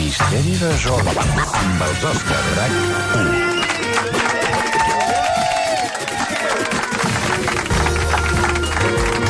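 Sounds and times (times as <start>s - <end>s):
speech: 0.1s - 4.1s
crowd applauding: 3.4s - 9.2s.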